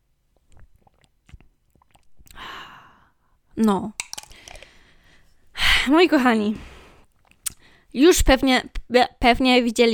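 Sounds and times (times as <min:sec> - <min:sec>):
person sipping a drink: 0:00.3 - 0:02.5, 0:04.0 - 0:04.9
swallowing: 0:00.4 - 0:02.4
speech: 0:03.6 - 0:04.0, 0:05.9 - 0:06.7, 0:07.9 - 0:09.9.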